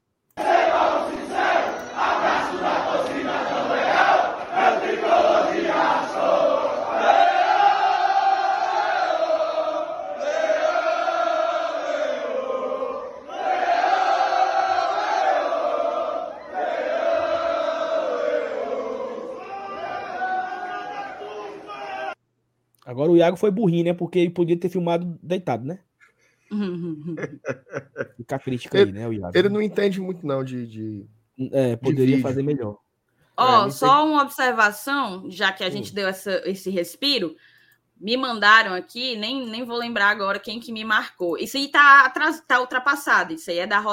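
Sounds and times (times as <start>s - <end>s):
large crowd of football fans chanting and singing: 0.4s - 22.2s
speech: 23.2s - 25.9s, 26.6s - 32.8s, 33.4s - 43.9s
laughter: 26.8s - 29.6s, 31.9s - 32.7s.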